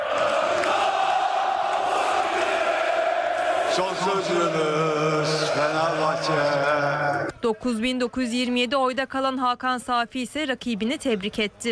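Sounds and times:
large crowd of club members chanting to celebrate an election victory: 0.0 - 7.3
speech: 3.8 - 11.7.

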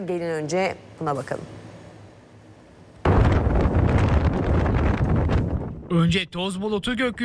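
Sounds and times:
speech: 0.0 - 1.6, 5.9 - 7.2
strong wind roaring during a storm in Istanbul: 3.0 - 7.2.

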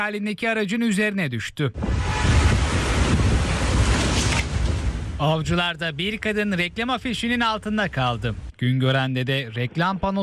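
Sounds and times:
speech: 0.0 - 2.1, 5.2 - 10.2
strong gusting wind buffeting the microphone: 1.8 - 8.5.

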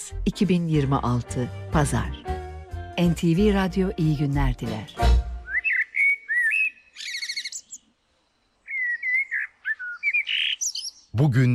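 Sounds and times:
speech: 0.1 - 2.3, 3.0 - 5.2, 11.2 - 11.5
Eurasian blackbird singing: 5.4 - 11.5.

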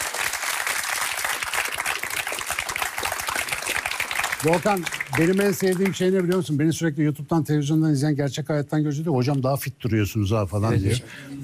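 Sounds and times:
audience applause: 0.0 - 6.5
speech: 4.4 - 11.4.

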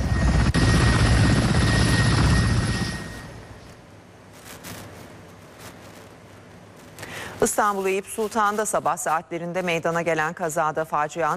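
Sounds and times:
helicopter rotor and engine noise: 0.0 - 3.7
faint noise: 3.4 - 11.3
speech: 7.6 - 11.3.

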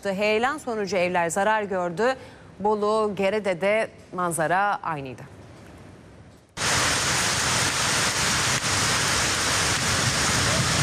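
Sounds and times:
speech: 0.0 - 5.4
heavy rain and hail during a storm in Turkey's Black Sea region: 6.6 - 10.8.

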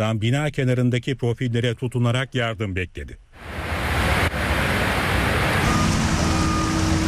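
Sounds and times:
speech: 0.0 - 3.7
floodwater rushing violently through streets: 3.4 - 7.0.

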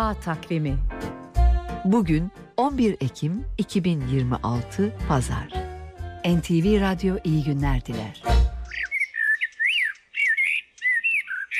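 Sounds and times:
speech: 0.0 - 1.2, 1.8 - 5.6, 6.2 - 8.4
common blackbird singing: 8.1 - 11.5.

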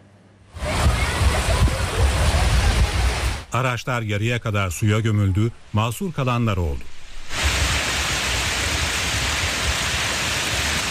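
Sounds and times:
heavy rain mixed with hail during a midday downpour in a city centre: 0.6 - 3.5, 7.2 - 10.9
speech: 3.5 - 6.9.

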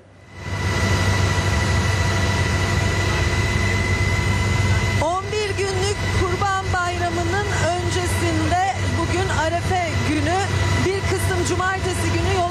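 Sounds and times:
helicopter engine and rotor noise inside a gendarmerie helicopter cabin: 0.0 - 12.4.

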